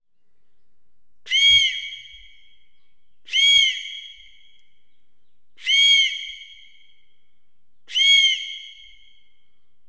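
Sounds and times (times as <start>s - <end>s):
eagle whistle with reverb: 1.3s - 2.3s, 3.3s - 4.4s, 5.6s - 6.8s, 8.0s - 9.0s.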